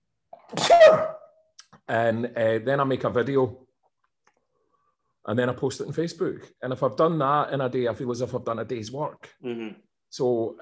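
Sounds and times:
person sneezing: 0.4 - 1.3
speech: 0.5 - 1.1, 1.9 - 3.7, 5.3 - 10.6.

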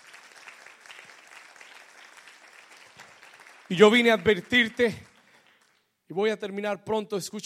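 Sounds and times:
large audience clapping: 0.0 - 6.0
speech: 3.7 - 5.1, 6.1 - 7.4.

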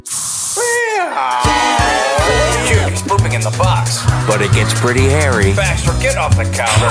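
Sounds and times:
aerosol spray hissing: 0.0 - 0.8
laughter: 0.9 - 6.9
speech: 1.0 - 1.7, 3.3 - 6.9.

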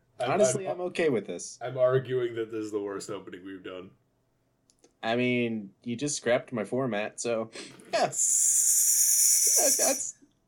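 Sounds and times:
speech: 0.2 - 4.0, 5.0 - 8.6, 9.6 - 10.2
person hissing like a snake: 8.2 - 10.1.

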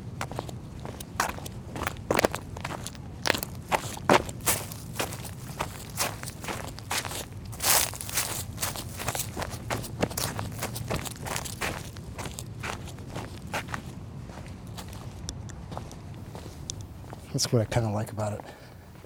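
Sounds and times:
crunchy footsteps walking: 0.2 - 13.8
faint rustling: 2.2 - 12.5
speech: 17.4 - 18.6.

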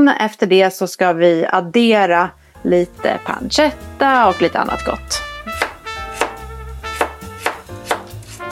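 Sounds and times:
speech: 0.0 - 5.3
soft music: 0.0 - 8.5
knife chopping carrot and yellow onion on a cutting board: 5.5 - 8.5.

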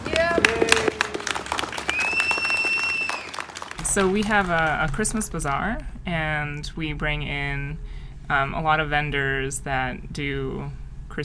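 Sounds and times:
audience applauding: 0.0 - 5.2
speech: 4.0 - 11.2.

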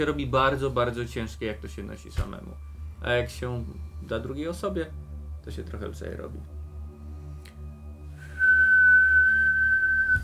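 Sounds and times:
speech: 0.0 - 6.6
low rumbling hum: 0.0 - 10.2
kettle whistling: 8.1 - 10.2.

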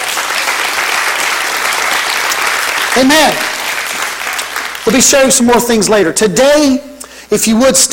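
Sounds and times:
crowd clapping hands in praise: 0.0 - 5.6
speech: 2.9 - 3.5, 4.8 - 7.9.

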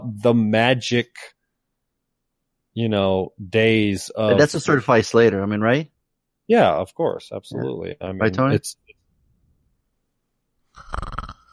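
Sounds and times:
speech: 0.1 - 1.4, 2.8 - 5.9, 6.5 - 8.8, 10.8 - 11.4
short raspy snore made by a voice: 10.8 - 11.5.

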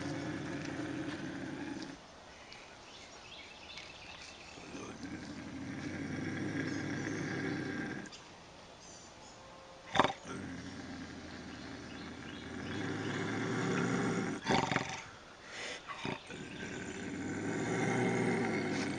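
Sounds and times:
bobcat growling: 0.0 - 2.0, 4.6 - 8.1, 9.9 - 15.1, 15.9 - 18.9.

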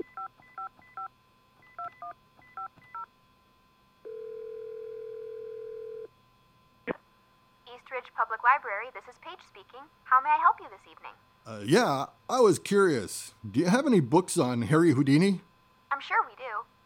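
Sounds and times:
telephone dial tone: 4.1 - 6.1
speech: 7.8 - 16.2.

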